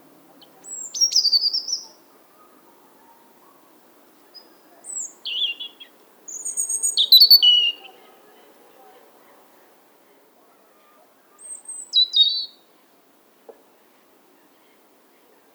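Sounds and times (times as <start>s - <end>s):
European robin Erithacus rubecula singing: 0.0s - 9.0s, 11.3s - 12.7s.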